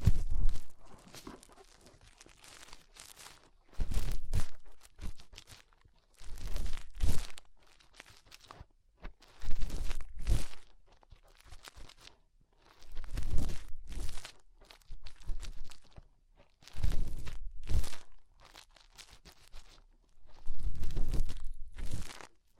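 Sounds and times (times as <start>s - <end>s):
deep thumps: 0.0s - 0.7s
loud crackling crunching bursts from fingers in an ear: 0.0s - 8.6s, 9.2s - 22.5s
fingers rubbing and digging inside an ear: 0.0s - 22.5s.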